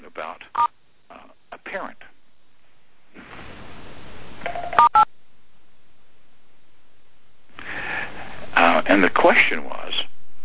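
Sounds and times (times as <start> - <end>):
faint hiss: 0.0 - 10.4
telephone keypad tones pressing star and six: 4.5 - 5.1.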